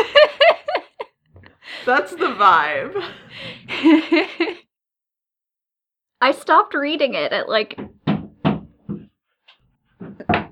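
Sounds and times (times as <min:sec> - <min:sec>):
laughter: 0:00.0 - 0:04.6
speech: 0:01.8 - 0:04.6, 0:06.2 - 0:07.9
excited dog's tail thumping against a door: 0:07.8 - 0:09.1.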